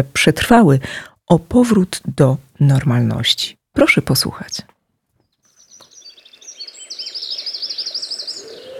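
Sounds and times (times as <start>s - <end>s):
speech: 0.0s - 4.7s
faint birdsong: 5.1s - 8.7s
wren singing a rapid trill: 5.3s - 8.7s.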